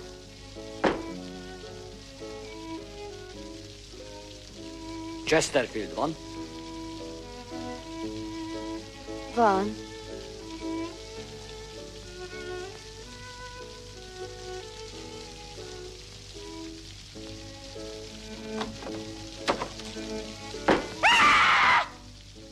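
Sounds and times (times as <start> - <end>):
soft tonal musical background: 0.0 - 22.5
steady rain pattering: 0.0 - 22.5
sharp knocks: 0.8 - 1.2, 18.6 - 19.8, 20.6 - 21.0
speech: 5.3 - 6.3, 9.4 - 9.9.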